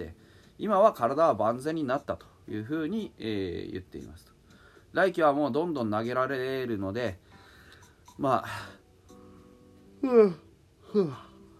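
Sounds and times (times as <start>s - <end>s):
speech: 0.0s - 4.3s, 4.9s - 7.2s, 8.2s - 8.8s, 10.0s - 11.3s
person yawning: 10.0s - 11.4s.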